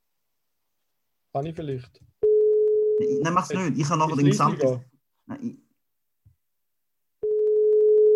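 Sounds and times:
speech: 0:01.3 - 0:02.2, 0:03.0 - 0:05.6
telephone beep tone: 0:02.2 - 0:03.2, 0:07.2 - 0:08.1.

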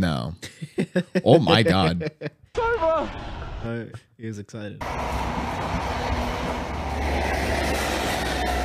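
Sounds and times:
speech: 0:00.0 - 0:08.4
laughter: 0:00.4 - 0:02.4
train passing: 0:04.8 - 0:08.6.

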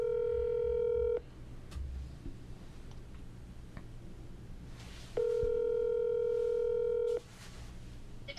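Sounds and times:
outgoing phone call ringback tone: 0:00.0 - 0:01.2, 0:05.2 - 0:07.2.

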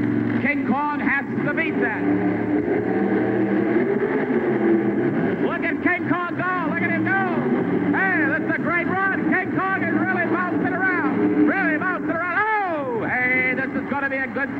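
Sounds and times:
big truck engine revving during a qualifying race run on a track: 0:00.0 - 0:14.5
man talking excitedly: 0:00.4 - 0:02.1, 0:05.4 - 0:14.5
speech: 0:00.5 - 0:03.5.

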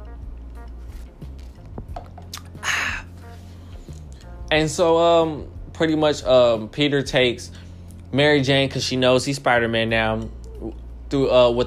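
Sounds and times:
person sipping a drink with wet mouth sounds: 0:02.2 - 0:04.3
speech: 0:04.5 - 0:11.6.

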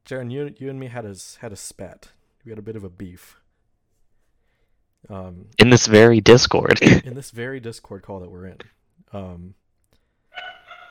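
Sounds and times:
speech: 0:00.1 - 0:03.4, 0:05.0 - 0:09.6
dog barking: 0:10.4 - 0:10.8.

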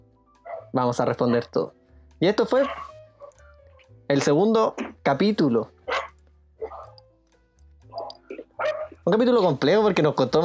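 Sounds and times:
dog barking: 0:00.4 - 0:01.6, 0:02.5 - 0:03.4, 0:05.9 - 0:07.0, 0:07.9 - 0:09.0
speech: 0:00.7 - 0:02.9, 0:04.1 - 0:05.7, 0:09.0 - 0:10.4.

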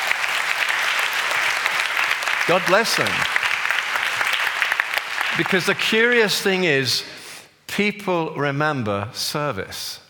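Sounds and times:
audience applause: 0:00.0 - 0:06.4
speech: 0:02.5 - 0:03.4, 0:05.4 - 0:07.2, 0:07.8 - 0:10.0.

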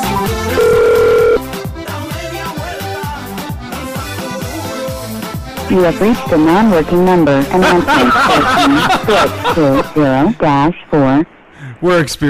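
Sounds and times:
telephone ringing on an outgoing call: 0:00.2 - 0:01.5
steady loud beep: 0:00.5 - 0:01.4
speech: 0:05.7 - 0:12.2
laughter: 0:07.4 - 0:10.3.

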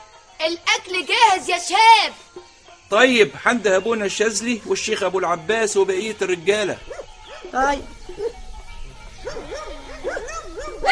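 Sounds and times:
speech: 0:00.4 - 0:08.3
faint murmuring: 0:06.4 - 0:10.8
several dogs barking and yelping: 0:06.7 - 0:10.8.

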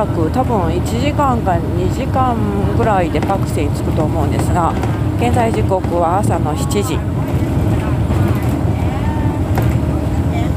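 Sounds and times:
speech: 0:00.0 - 0:07.3
old bus engine and road rumble on a rural road: 0:00.0 - 0:10.5
clattering rattles and bumps inside an old bus: 0:02.7 - 0:08.7, 0:09.4 - 0:10.1.

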